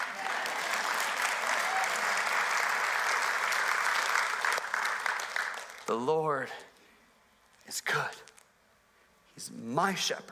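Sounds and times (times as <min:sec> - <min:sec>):
large audience applauding: 0:00.0 - 0:05.9
speech: 0:05.9 - 0:06.7, 0:07.7 - 0:08.3, 0:09.4 - 0:10.2.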